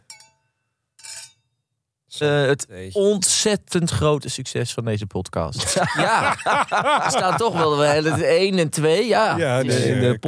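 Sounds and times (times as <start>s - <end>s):
glasses of red wine clinking in a toast: 0.0s - 1.4s
speech: 2.2s - 10.2s
laughter: 5.6s - 10.2s.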